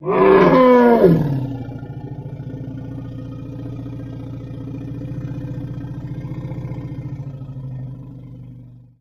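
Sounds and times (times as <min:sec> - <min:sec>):
elephant trumpeting: 0:00.0 - 0:02.0.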